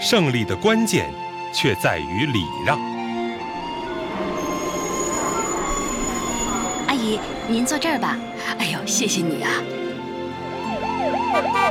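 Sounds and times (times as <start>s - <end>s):
speech: 0.1s - 3.0s, 7.1s - 9.8s, 11.3s - 11.7s
ambulance siren yelping: 2.5s - 8.4s, 10.4s - 11.7s
steady low hum: 3.0s - 8.4s.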